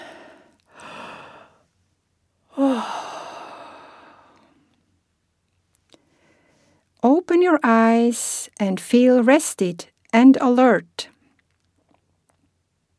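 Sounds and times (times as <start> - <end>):
person breathing: 0.0 - 1.7, 2.5 - 4.8, 6.0 - 6.9
person yawning while coming out of a relaxation exercise: 2.6 - 4.1
speech: 7.4 - 11.1.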